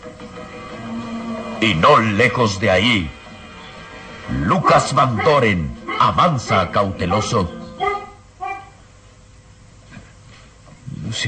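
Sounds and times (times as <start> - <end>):
speech: 1.6 - 3.2, 4.3 - 7.6
large mastiff barking behind a fence in fog: 4.5 - 8.8
rustle: 9.8 - 10.8.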